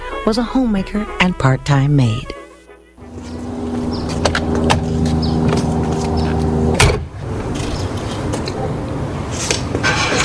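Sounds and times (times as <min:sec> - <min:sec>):
speech: 0:00.2 - 0:02.4
car engine humming in the Watts district of Los Angeles: 0:02.9 - 0:09.8
road noise of a rolling car: 0:03.0 - 0:10.2
car door shutting: 0:04.0 - 0:07.1.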